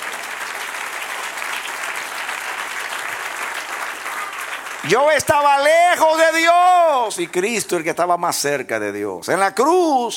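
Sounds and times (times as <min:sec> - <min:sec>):
audience applauding: 0:00.0 - 0:07.4
speech: 0:04.8 - 0:10.1.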